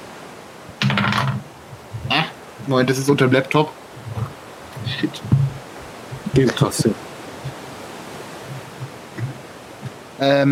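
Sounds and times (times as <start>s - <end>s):
dice clattering on a hard tabletop: 0.8s - 1.4s
speech: 2.7s - 3.8s, 4.9s - 5.4s, 6.4s - 7.0s, 10.2s - 10.5s.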